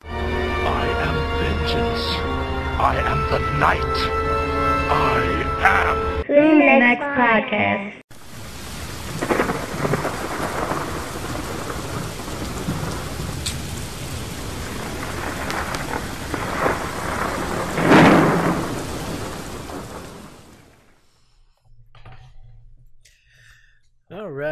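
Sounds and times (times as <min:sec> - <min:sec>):
steady rain: 0:00.2 - 0:03.8, 0:08.1 - 0:21.0
speech: 0:02.8 - 0:04.2, 0:04.9 - 0:08.0.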